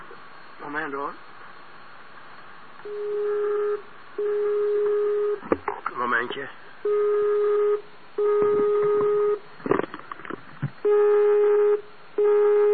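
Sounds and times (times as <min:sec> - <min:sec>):
speech: 0:00.7 - 0:01.3, 0:02.8 - 0:05.0, 0:06.0 - 0:08.8
telephone ringing tone while waiting for an answer: 0:02.8 - 0:05.4, 0:06.8 - 0:09.4, 0:10.8 - 0:12.7.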